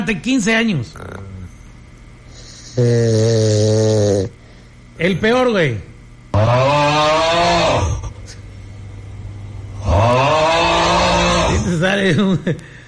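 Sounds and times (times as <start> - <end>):
speech: 0.0 - 1.1, 2.8 - 4.4, 5.0 - 7.1, 11.8 - 12.8
person imitating snoring with their voice: 0.9 - 1.6, 2.4 - 4.4, 6.3 - 8.2, 9.8 - 11.7.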